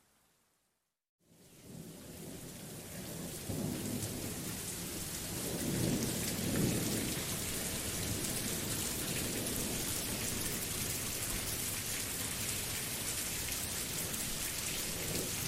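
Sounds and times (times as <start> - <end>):
dense steady hiss of gentle rain: 1.3 - 15.4
soft low rumble of thunder: 1.7 - 10.2.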